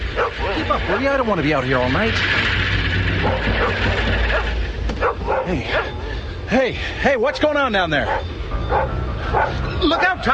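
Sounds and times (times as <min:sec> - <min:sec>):
dog barking and yipping: 0:00.0 - 0:01.0, 0:03.2 - 0:06.1, 0:07.3 - 0:10.3
steady low rumbling background: 0:00.0 - 0:07.1, 0:07.9 - 0:10.3
speech: 0:00.7 - 0:02.6, 0:03.2 - 0:10.3.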